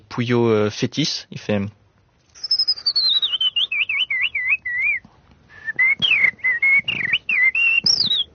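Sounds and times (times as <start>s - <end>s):
speech: 0.2s - 1.8s
person whistling an imitation of blackbird song: 2.4s - 8.3s.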